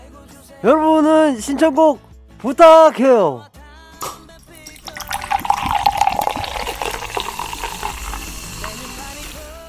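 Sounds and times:
speech: 0.6s - 3.5s
ice clinking in a glass: 4.4s - 9.1s
cola pouring into a glass full of ice: 4.5s - 9.5s
cola fizz crackling: 4.7s - 9.5s.

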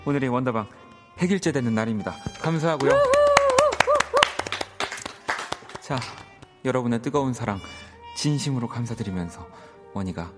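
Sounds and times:
speech: 0.0s - 3.2s, 5.9s - 10.3s
sharp irregular hand clapping: 2.3s - 6.7s.

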